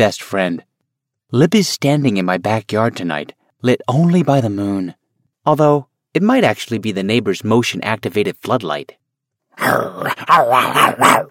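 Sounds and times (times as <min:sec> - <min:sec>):
speech: 0:00.0 - 0:00.7, 0:01.3 - 0:09.0, 0:09.6 - 0:11.2
neighbor's dog barking in a backyard at night: 0:10.1 - 0:11.2.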